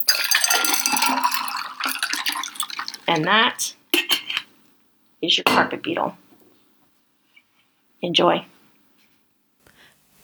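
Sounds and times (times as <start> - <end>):
glass clinking: 0.0 - 3.4
cocktail poured from a shaker into a glass: 0.0 - 3.6
speech: 3.1 - 3.8, 5.2 - 6.2, 8.0 - 8.5.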